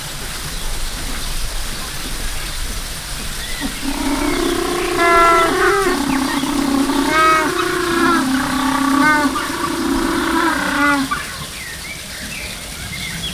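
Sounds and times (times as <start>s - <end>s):
African penguin calling in a zoo: 3.6s - 11.4s.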